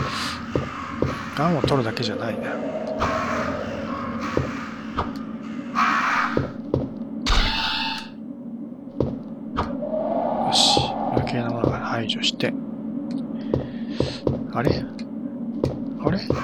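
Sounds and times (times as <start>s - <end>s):
crows cawing in a video game: 0.0s - 6.6s
steady low video game ambience hum: 0.0s - 16.4s
speech: 1.4s - 3.2s.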